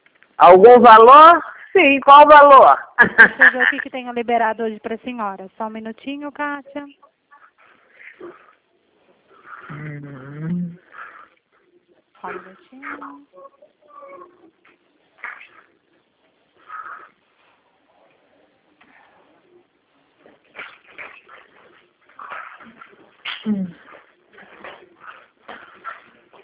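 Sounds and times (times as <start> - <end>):
speech: 0.4 - 7.1, 8.2 - 8.4, 12.2 - 14.3, 23.4 - 23.8
dog whimpering and whining: 12.8 - 14.5.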